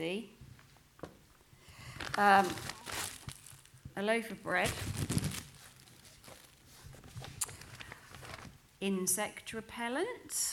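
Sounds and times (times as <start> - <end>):
speech: 0.0 - 0.4, 2.2 - 2.7, 4.0 - 5.2, 8.8 - 10.5
plastic bag crinkling and rustling: 1.7 - 3.9, 4.5 - 8.6.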